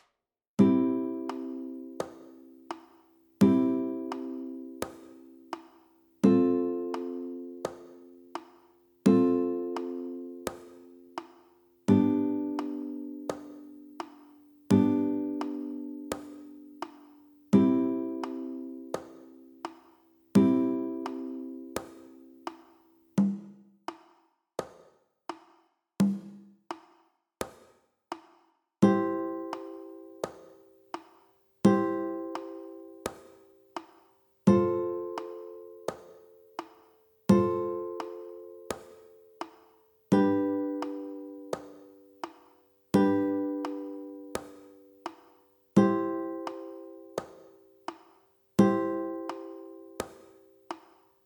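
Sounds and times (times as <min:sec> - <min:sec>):
guitar chord progression C F G C on high strings: 0:00.6 - 0:02.7, 0:03.4 - 0:05.6, 0:06.3 - 0:11.3, 0:11.9 - 0:19.7, 0:20.4 - 0:22.5, 0:28.9 - 0:30.3, 0:31.7 - 0:33.2, 0:34.5 - 0:36.6, 0:37.3 - 0:39.5, 0:40.1 - 0:42.4, 0:42.9 - 0:45.1, 0:45.8 - 0:47.3, 0:48.6 - 0:50.1.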